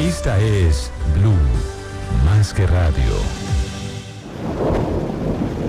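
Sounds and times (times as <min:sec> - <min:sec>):
speech: 0:00.2 - 0:01.7, 0:02.4 - 0:03.4
heavy rainfall in a thunderstorm: 0:04.1 - 0:05.6
low rumble of thunder: 0:04.2 - 0:05.6.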